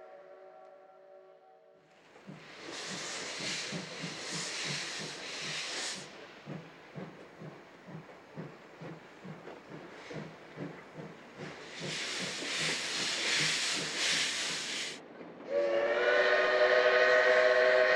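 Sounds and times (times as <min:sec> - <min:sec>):
steam locomotive exhaust beating over a low rumble: 0:01.9 - 0:17.9
loud bursts of hissing steam from a steam locomotive: 0:02.2 - 0:15.0
steam locomotive whistle: 0:15.5 - 0:17.9.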